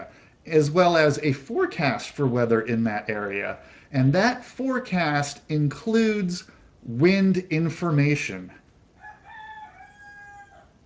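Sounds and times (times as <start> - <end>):
speech: 0.1 - 8.6
rooster crowing: 9.0 - 10.8.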